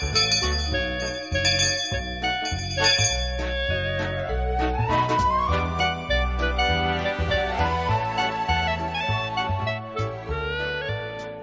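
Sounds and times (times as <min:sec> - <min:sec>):
class bell chime melody: 0:00.0 - 0:04.3
steady rhythmic backing music: 0:00.0 - 0:11.4.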